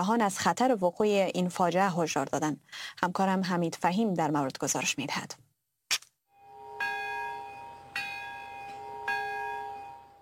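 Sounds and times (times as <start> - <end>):
speech: 0.0 - 5.4
large memorial bell tolling in Nagasaki at an atomic bombing ceremony: 6.4 - 10.2.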